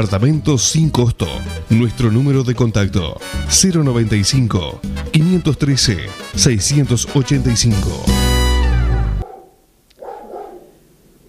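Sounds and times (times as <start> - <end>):
speech: 0.0 - 8.2
neighbourhood dog barking in Piriápolis Maldonado Uruguay: 8.9 - 10.8.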